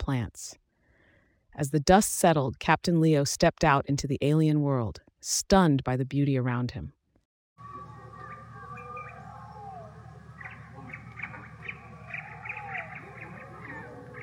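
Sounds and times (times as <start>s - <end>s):
speech: 0.1s - 0.6s, 1.6s - 7.0s
dense chorus of exotic birds calling and chirping in a rainforest: 7.6s - 14.2s
steady humming backdrop: 7.6s - 14.2s.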